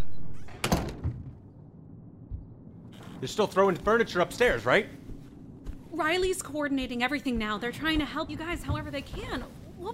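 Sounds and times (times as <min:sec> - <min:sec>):
door shutting with a solid thunk: 0:00.0 - 0:01.5
low room rumble: 0:00.1 - 0:09.9
speech: 0:03.2 - 0:05.0, 0:06.0 - 0:09.9.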